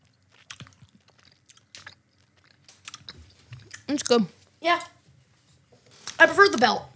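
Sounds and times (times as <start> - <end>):
chewing sticky sour candy: 0.0 - 5.0
speech: 3.9 - 5.0, 6.2 - 6.9.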